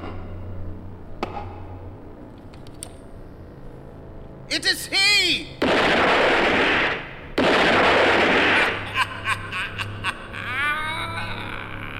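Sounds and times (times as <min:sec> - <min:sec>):
speech: 0:04.5 - 0:05.6
gunshots fired by several men: 0:05.6 - 0:08.8
laughter: 0:08.6 - 0:11.9.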